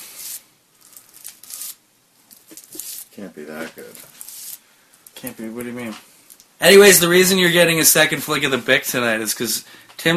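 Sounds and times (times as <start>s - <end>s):
pure hemp king-size rolling paper crinkling while being twisted: 0.2s - 4.6s
speech: 3.2s - 4.2s, 5.2s - 10.1s.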